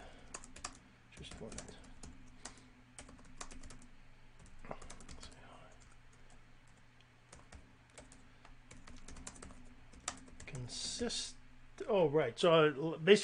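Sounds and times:
low constant hum: 0:00.0 - 0:13.2
typing on a computer keyboard: 0:00.3 - 0:06.3, 0:07.3 - 0:10.6
speech: 0:11.0 - 0:13.2.

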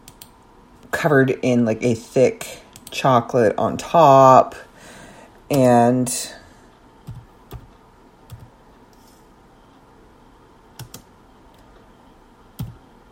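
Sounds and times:
low steady hiss: 0:00.0 - 0:13.1
speech: 0:00.9 - 0:04.7, 0:05.5 - 0:06.4
typing on a computer keyboard: 0:07.0 - 0:07.7, 0:08.3 - 0:08.5, 0:10.8 - 0:11.6, 0:12.6 - 0:13.1.

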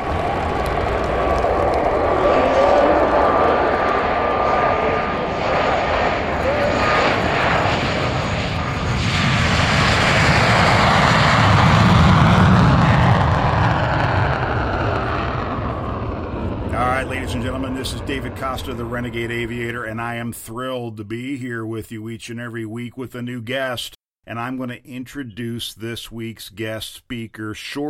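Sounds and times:
jet engine roaring with a whine on top: 0:00.0 - 0:19.8
speech: 0:18.5 - 0:27.8.

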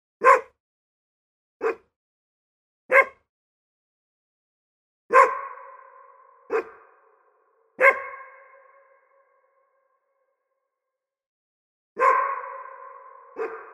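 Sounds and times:
dog barking in a forest: 0:00.2 - 0:00.6, 0:01.6 - 0:01.9, 0:02.9 - 0:03.3, 0:05.1 - 0:09.3, 0:12.0 - 0:13.7.

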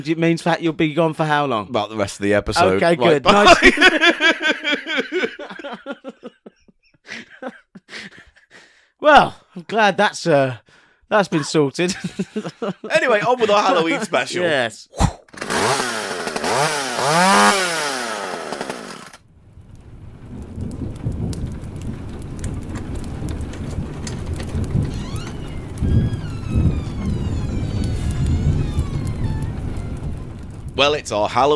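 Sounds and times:
speech: 0:00.0 - 0:04.8, 0:09.0 - 0:15.8, 0:16.6 - 0:17.6, 0:30.8 - 0:31.5
laughter: 0:03.1 - 0:08.6, 0:11.8 - 0:14.4
deep rolling thunder: 0:19.3 - 0:31.5
sharp sweeping electric crackle of lightning in a Halloween sound effect: 0:19.4 - 0:31.5
steady heavy rain: 0:19.4 - 0:31.5.

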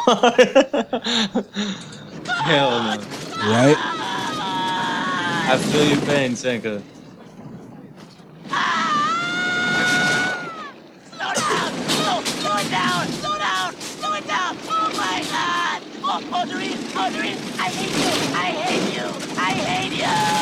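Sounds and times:
laughter: 0:00.0 - 0:20.4
speech: 0:00.1 - 0:04.3, 0:05.5 - 0:06.9
steady rushing roar: 0:00.3 - 0:20.4
man screaming in a bobsled crash scene: 0:02.2 - 0:06.1, 0:08.5 - 0:20.4
man yelling: 0:02.2 - 0:06.3, 0:08.5 - 0:20.4.

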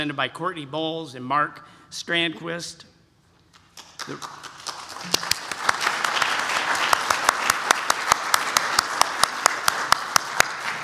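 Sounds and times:
speech: 0:00.0 - 0:02.9, 0:04.0 - 0:05.4
sharp claps: 0:03.5 - 0:10.8
crowd applauding: 0:03.7 - 0:10.8.

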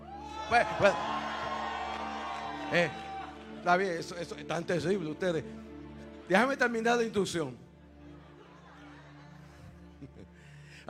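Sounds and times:
gathered crowd whooping: 0:00.0 - 0:03.8
speech: 0:00.5 - 0:01.2, 0:02.7 - 0:03.0, 0:03.6 - 0:05.7, 0:06.3 - 0:07.6
laughter: 0:08.0 - 0:10.4.

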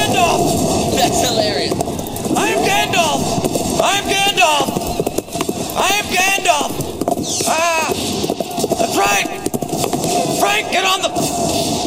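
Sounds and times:
excited voices: 0:00.0 - 0:11.4
horse hooves clip-clopping: 0:00.0 - 0:11.8.

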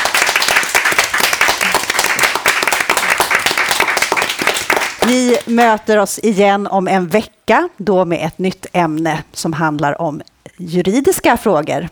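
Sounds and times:
audience applause after a panel conversation: 0:00.0 - 0:05.7
speech: 0:05.0 - 0:11.9.

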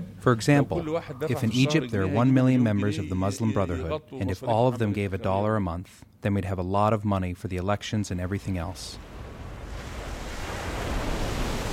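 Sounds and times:
speech: 0:00.2 - 0:09.1
ocean waves crashing on a beach: 0:09.0 - 0:11.7
wind: 0:09.0 - 0:11.7.

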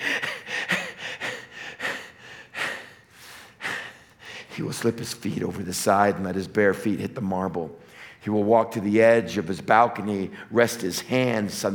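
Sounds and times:
man gasping and panting on waking from a dream: 0:00.0 - 0:04.5
speech: 0:04.6 - 0:11.7.

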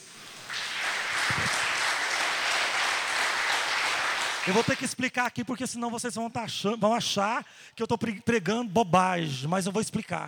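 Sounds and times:
large crowd applauding in an echoing hall: 0:00.4 - 0:04.9
speech: 0:04.4 - 0:10.2.

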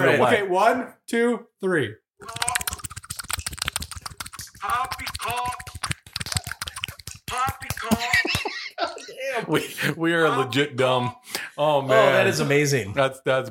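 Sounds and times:
speech: 0:00.0 - 0:02.6, 0:07.3 - 0:13.4
voice making wobbly warbling mouth noises: 0:02.2 - 0:07.9
rapid steady improvised slapping: 0:02.2 - 0:08.5
laughter: 0:07.7 - 0:10.6.

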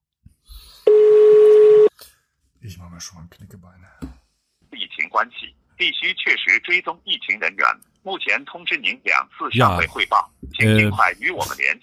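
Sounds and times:
loud telephone ringing tone as a phone call is placed: 0:00.9 - 0:01.9
speech: 0:02.7 - 0:04.1, 0:05.2 - 0:11.8.

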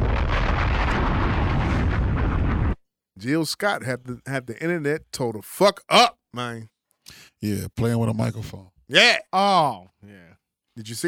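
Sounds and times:
bomb explosions sound effect: 0:00.0 - 0:02.8
speech: 0:03.2 - 0:11.0.

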